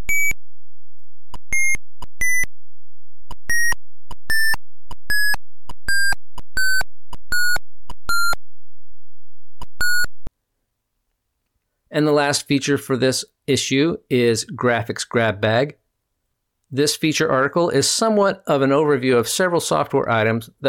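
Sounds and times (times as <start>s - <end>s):
short bright electronic beeps from a resistor color-code calculator on an Atari 8-bit computer: 1.5s - 2.5s, 3.5s - 8.4s, 9.8s - 10.2s
speech: 12.0s - 15.8s, 16.7s - 20.6s.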